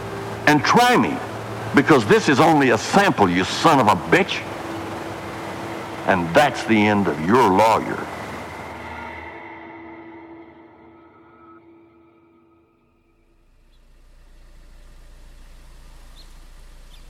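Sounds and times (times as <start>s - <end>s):
car engine idling: 0.0s - 9.4s, 13.2s - 17.0s
speech: 0.5s - 4.5s, 6.1s - 8.1s.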